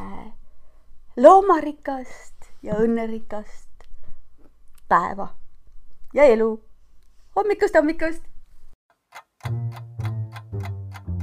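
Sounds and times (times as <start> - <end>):
speech: 1.2 - 3.6, 4.9 - 5.4, 6.1 - 6.7, 7.4 - 8.3, 9.1 - 9.9
clock ticking: 9.1 - 11.2.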